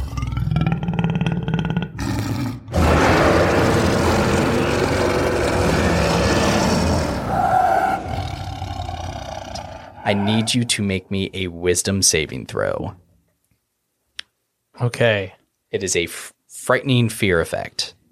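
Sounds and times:
lion's deep bellowing roar: 0:00.0 - 0:10.7
speech: 0:10.1 - 0:13.0, 0:14.8 - 0:18.0.

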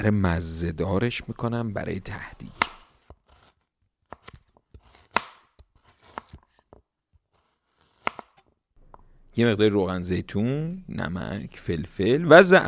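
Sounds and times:
speech: 0:00.0 - 0:02.6, 0:09.4 - 0:12.6
sharp knife slicing potatoes into rings on a board: 0:02.4 - 0:06.7, 0:07.8 - 0:08.4.

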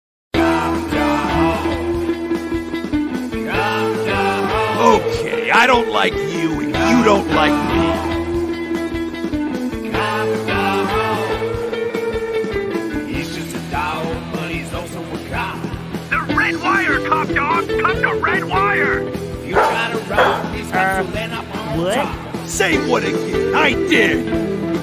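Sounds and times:
busy music: 0:00.4 - 0:24.8
speech: 0:04.9 - 0:08.1, 0:20.2 - 0:24.8
dog barking and whimpering with high yips and whines: 0:19.6 - 0:20.6.

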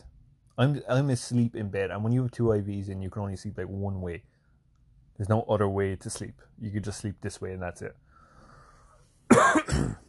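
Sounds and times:
speech: 0:00.6 - 0:04.3, 0:05.2 - 0:08.0
person coughing: 0:09.3 - 0:10.0.

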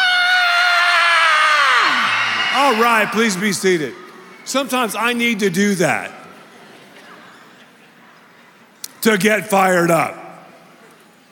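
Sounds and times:
children in audience screaming wildly: 0:00.0 - 0:04.5
speech: 0:02.6 - 0:06.2, 0:09.0 - 0:10.2.

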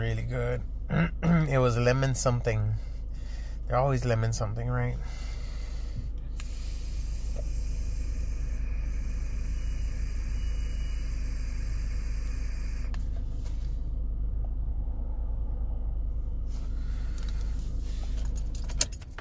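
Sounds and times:
speech: 0:00.0 - 0:02.9, 0:03.7 - 0:05.3
car engine idling to warm up on a chilly day: 0:00.0 - 0:19.1
keys jingling and rattling: 0:18.2 - 0:19.1.

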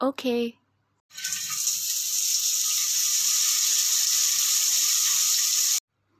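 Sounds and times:
speech: 0:00.0 - 0:01.7
shower water spraying: 0:01.1 - 0:05.8.

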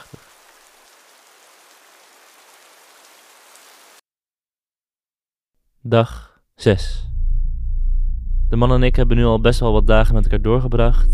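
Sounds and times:
rain falling: 0:00.0 - 0:04.0
speech: 0:05.8 - 0:07.1, 0:08.5 - 0:11.1.

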